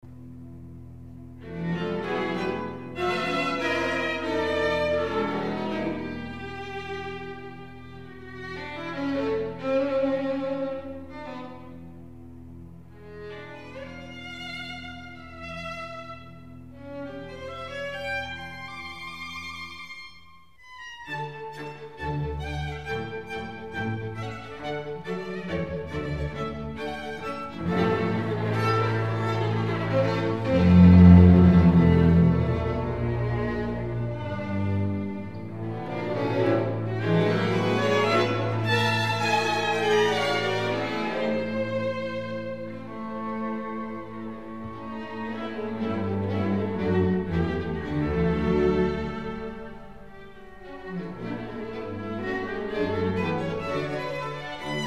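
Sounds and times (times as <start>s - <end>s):
string orchestra music: 0.0s - 54.8s.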